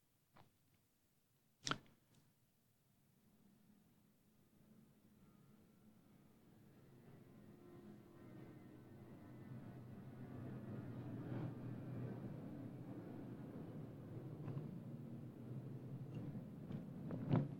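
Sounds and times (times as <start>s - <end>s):
airplane passing overhead: 6.0s - 17.0s.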